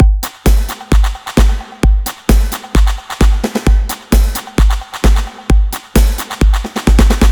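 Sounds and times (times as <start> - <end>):
fast 80s Brit pop beat: 0.0 - 7.3.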